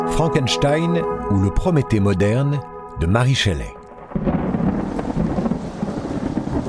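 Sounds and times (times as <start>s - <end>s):
speech: 0.2s - 4.3s
steady rainfall on the shores of Lake Geneva: 3.9s - 6.6s
thunder rolling on the shores of Lake Geneva: 4.0s - 6.6s.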